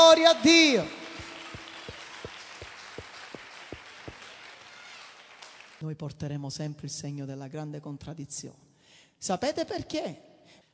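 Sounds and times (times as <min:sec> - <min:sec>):
crowd applauding in time: 0:00.0 - 0:05.8
speech: 0:00.1 - 0:01.0, 0:05.8 - 0:08.6, 0:09.2 - 0:10.3.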